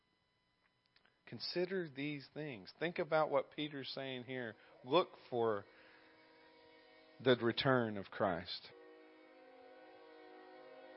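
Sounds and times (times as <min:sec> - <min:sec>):
speech: 0:01.3 - 0:05.8, 0:07.2 - 0:08.8
distant train whistle: 0:02.7 - 0:10.9.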